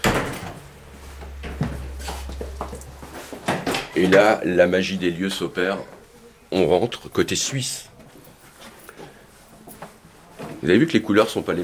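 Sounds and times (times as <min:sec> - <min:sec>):
airlock doors clunking open and shut at the French-Swiss border: 0:00.0 - 0:04.3
steady low mechanical hum: 0:00.0 - 0:06.6
speech: 0:04.0 - 0:07.9, 0:10.6 - 0:11.6.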